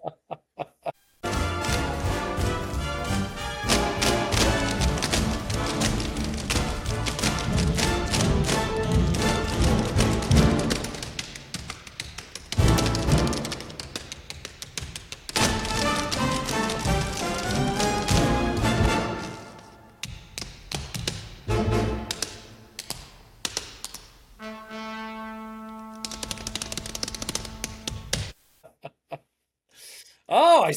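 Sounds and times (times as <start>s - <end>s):
loud brassy orchestra: 1.2s - 11.0s, 12.6s - 13.4s, 15.4s - 19.8s, 21.5s - 22.2s, 24.4s - 27.9s
tap dancing feet in a stage musical finale: 1.2s - 24.2s, 26.0s - 28.4s.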